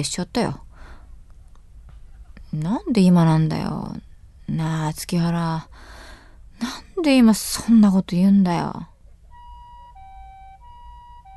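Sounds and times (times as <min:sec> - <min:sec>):
speech: 0:00.0 - 0:00.6, 0:02.5 - 0:06.0, 0:06.6 - 0:08.9
low rumble: 0:00.0 - 0:11.3
distant two-tone ambulance siren: 0:09.0 - 0:11.3.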